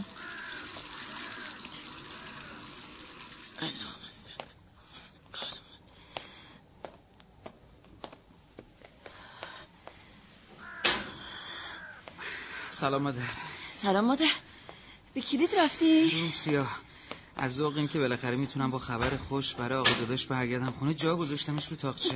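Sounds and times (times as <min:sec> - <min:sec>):
hands rinsed under a running tap: 0:00.0 - 0:03.8
speech: 0:12.8 - 0:14.4, 0:15.2 - 0:22.1.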